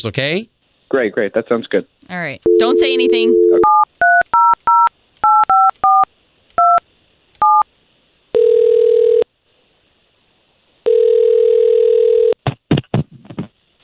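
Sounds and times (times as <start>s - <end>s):
speech: 0.0s - 3.6s
telephone ringing tones: 2.4s - 6.8s, 7.4s - 7.6s, 8.4s - 9.3s, 10.9s - 12.4s
telephone keypad tones dialing a call: 2.5s - 6.8s, 7.4s - 7.6s.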